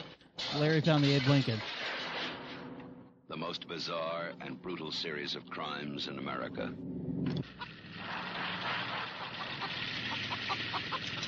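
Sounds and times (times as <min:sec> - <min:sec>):
speech: 0:00.5 - 0:01.8, 0:03.3 - 0:07.7
chicken clucking: 0:08.9 - 0:11.2.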